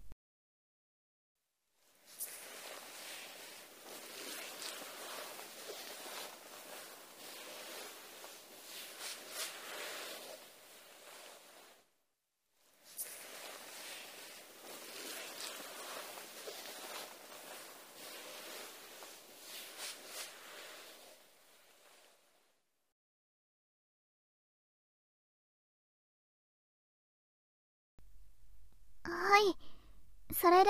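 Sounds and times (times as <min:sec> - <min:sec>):
soft towel wiping away foam: 0:01.9 - 0:11.9, 0:12.8 - 0:22.3
speech: 0:30.4 - 0:30.6.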